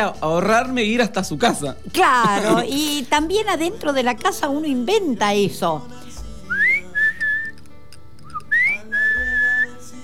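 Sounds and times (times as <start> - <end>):
speech: 0.0 - 6.0
laughter: 2.1 - 3.0
person whistling a signal call: 6.5 - 9.8.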